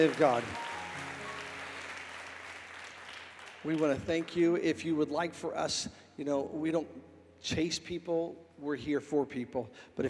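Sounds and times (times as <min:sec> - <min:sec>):
speech: 0:00.0 - 0:00.6, 0:03.6 - 0:10.0
audience applause at a church service: 0:00.0 - 0:04.5.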